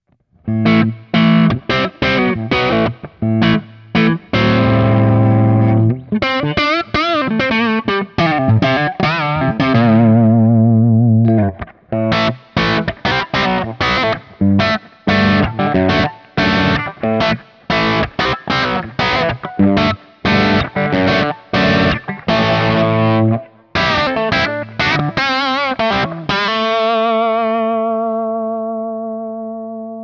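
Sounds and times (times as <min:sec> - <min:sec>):
Hagstrom Ultra Max electric guitar with crunch tone played fingerstyle on neck and bridge: 0:00.0 - 0:30.0.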